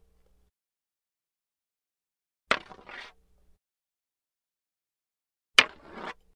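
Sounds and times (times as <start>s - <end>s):
light wooden staff scraping: 2.5s - 3.2s, 5.6s - 6.3s.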